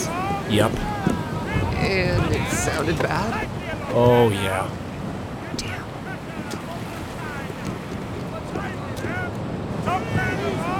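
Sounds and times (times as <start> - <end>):
water rushing past a moving sailing boat: 0.0 - 10.7
wind buffeting the microphone: 0.0 - 10.7
speech: 0.5 - 0.9, 1.8 - 4.8.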